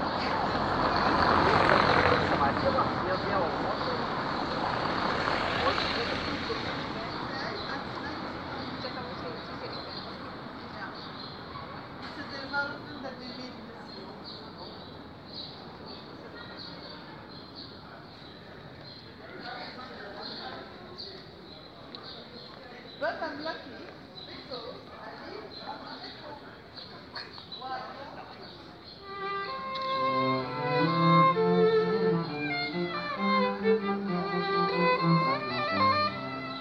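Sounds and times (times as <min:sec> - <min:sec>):
vehicle rushing past loudly in a busy city street: 0:00.0 - 0:08.6, 0:29.1 - 0:36.5
murmur of voices in a Paris street: 0:00.0 - 0:36.5
street music melody in Paris: 0:28.9 - 0:36.5.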